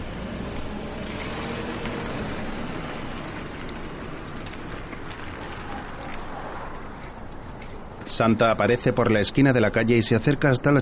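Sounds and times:
car engine rumbling with road noise as car drives away: 0.0 - 8.1
speech: 8.1 - 10.7.

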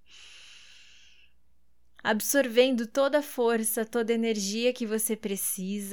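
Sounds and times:
deep inhalation during breathing exercise: 0.0 - 1.4
speech: 2.0 - 5.9.

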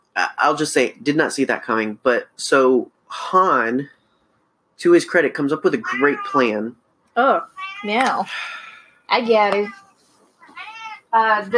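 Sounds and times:
speech: 0.2 - 4.0, 4.8 - 9.8, 11.1 - 11.5
cat meowing loudly: 5.8 - 6.6, 7.5 - 8.1, 9.6 - 11.1.

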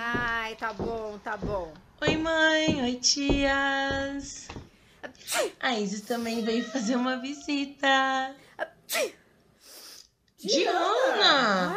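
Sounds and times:
speech: 0.1 - 9.2, 10.4 - 11.7
person with an allergy sneezing: 5.2 - 5.6, 8.6 - 10.0.

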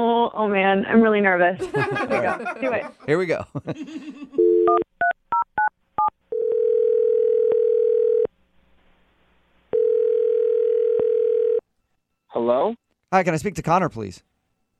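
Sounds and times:
speech: 0.0 - 5.0, 12.4 - 14.3
laughter: 1.6 - 4.4
long steady telephone ringing tones: 4.4 - 4.8, 6.0 - 8.3, 9.7 - 11.6.

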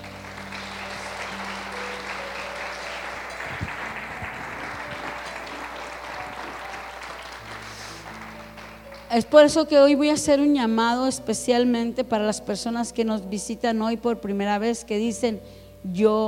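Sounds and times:
sustained organ or keyboard tones: 0.0 - 9.1
church audience applauding: 0.0 - 9.3
speech: 9.1 - 16.2.

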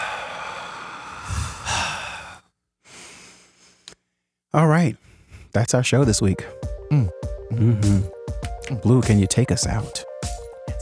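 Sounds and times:
deep breath with a sigh-like quality: 0.0 - 4.0, 5.0 - 5.6
speech: 4.5 - 10.1.

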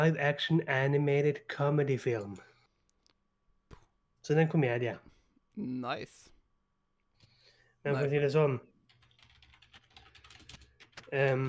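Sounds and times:
speech: 0.0 - 2.5, 4.2 - 6.3, 7.8 - 8.7, 11.1 - 11.4
computer keys clicking: 8.9 - 11.4.

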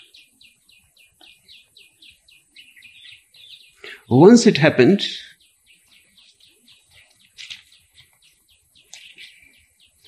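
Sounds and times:
birds singing: 0.0 - 10.0
faint outdoor hush: 2.5 - 9.8
speech: 4.1 - 5.3.

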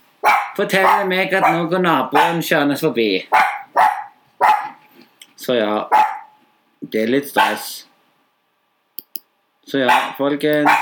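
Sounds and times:
dog barking: 0.2 - 2.4, 3.3 - 4.8, 5.9 - 6.4, 7.4 - 7.7, 9.9 - 10.7
speech: 0.6 - 3.5, 5.5 - 6.0, 6.8 - 7.9, 9.7 - 10.7.

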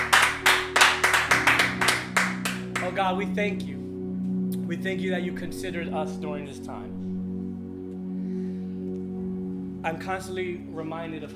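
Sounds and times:
congregation clapping in a rhythmic beat: 0.0 - 3.3
sustained low organ-like tones: 0.0 - 11.3
speech: 3.0 - 3.8, 4.7 - 7.1, 9.8 - 11.3.

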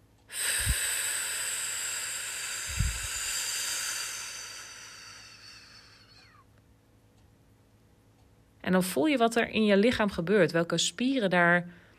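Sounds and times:
long exhalation on a voiceless f during a breathing exercise: 0.3 - 6.4
speech: 8.7 - 11.8.

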